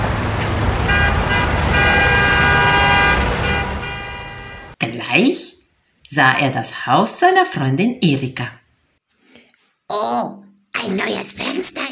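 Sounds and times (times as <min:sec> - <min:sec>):
dense road traffic rumbling at the edge of a town: 0:00.0 - 0:04.8
several car horns honking: 0:00.0 - 0:04.8
speech: 0:06.1 - 0:08.6, 0:09.9 - 0:11.9.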